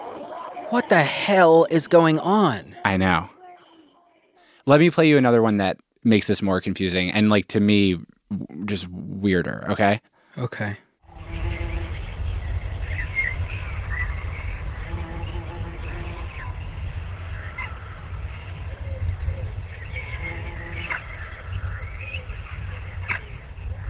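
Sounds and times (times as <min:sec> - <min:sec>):
speech: 0:00.7 - 0:03.3, 0:04.7 - 0:10.8
low rumble: 0:11.1 - 0:23.8
birds chirping: 0:11.7 - 0:23.8.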